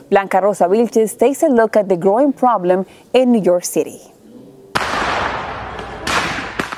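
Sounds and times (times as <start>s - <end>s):
speech: 0.1s - 4.2s
illegal fireworks exploding in city streets: 4.8s - 6.7s.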